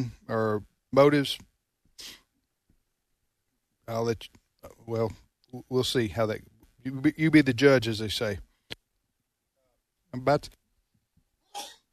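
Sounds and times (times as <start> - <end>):
speech: 0.0 - 2.2, 3.9 - 8.5, 10.1 - 10.6
breathy sniff or exhale: 2.0 - 2.3
person sneezing: 11.5 - 11.9.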